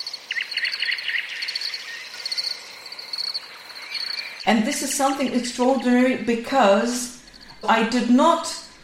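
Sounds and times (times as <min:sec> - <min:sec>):
field crickets trilling: 0:00.0 - 0:04.5, 0:07.1 - 0:07.6
thrush nightingale singing: 0:00.0 - 0:06.3, 0:07.1 - 0:07.9
speech: 0:04.4 - 0:08.6.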